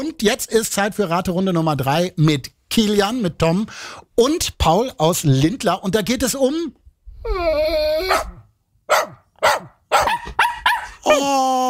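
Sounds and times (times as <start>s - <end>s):
speech: 0.0s - 8.3s
dog barking: 8.1s - 11.0s.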